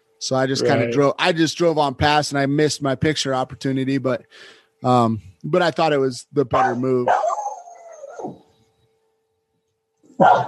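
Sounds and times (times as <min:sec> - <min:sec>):
speech: 0:00.2 - 0:07.4, 0:10.2 - 0:10.4
dog barking: 0:06.6 - 0:08.4, 0:10.2 - 0:10.4.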